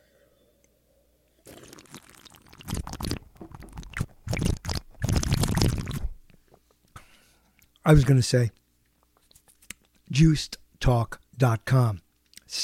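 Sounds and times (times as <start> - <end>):
loud sips and swallows of coffee: 1.4 - 6.2
leftover coffee pouring into a cup: 1.5 - 4.0
speech: 7.9 - 8.6, 10.2 - 12.6.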